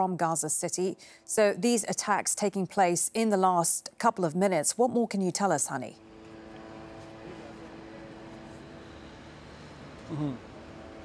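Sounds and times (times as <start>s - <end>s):
speech: 0.0s - 6.1s, 10.1s - 10.5s
military drones humming overhead: 6.0s - 11.0s.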